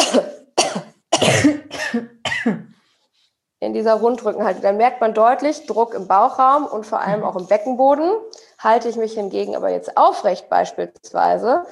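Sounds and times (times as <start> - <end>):
person coughing hard while bent forward in a hunched posture: 0.0 - 2.8
speech: 3.6 - 11.7.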